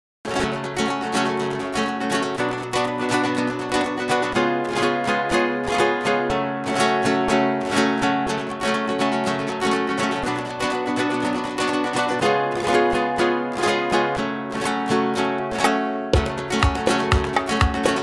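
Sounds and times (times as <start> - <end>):
guitar backing track: 0.3 - 18.0.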